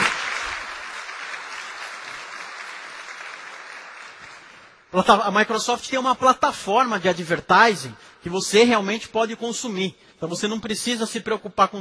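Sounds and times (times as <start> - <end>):
crowd applauding: 0.0 - 4.9
speech: 4.9 - 11.7.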